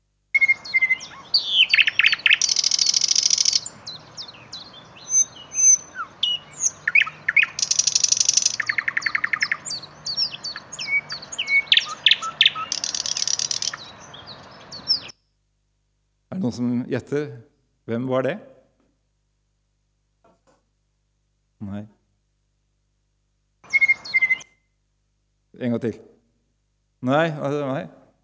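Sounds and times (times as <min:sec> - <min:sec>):
nightingale singing: 0:00.3 - 0:15.2, 0:23.6 - 0:24.7
speech: 0:16.5 - 0:18.5, 0:25.8 - 0:26.1, 0:27.1 - 0:28.0.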